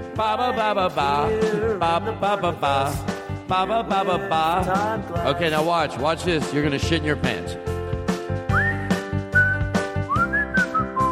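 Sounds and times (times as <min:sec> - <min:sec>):
steady rhythmic backing music with a regular beat: 0:00.0 - 0:11.1
speech: 0:00.2 - 0:07.7
person whistling a bright sliding melody: 0:08.5 - 0:11.1.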